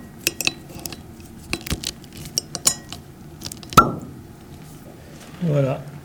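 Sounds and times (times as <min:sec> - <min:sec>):
clicks and scrapes of handling a bottle of Gamay wine: 0:00.0 - 0:04.5
cork popping from a wine bottle: 0:00.0 - 0:04.6
speech: 0:05.4 - 0:05.9.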